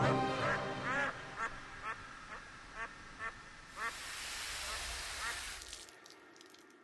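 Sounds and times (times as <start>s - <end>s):
duck quacking: 0.3s - 4.0s
broad hissing noise: 0.8s - 6.2s.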